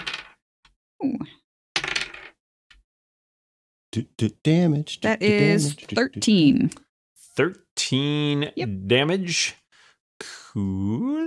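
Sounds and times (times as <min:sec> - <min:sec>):
dice clattering across a tabletop: 0:00.0 - 0:00.4, 0:01.8 - 0:02.4
speech: 0:03.9 - 0:09.6, 0:10.2 - 0:11.2.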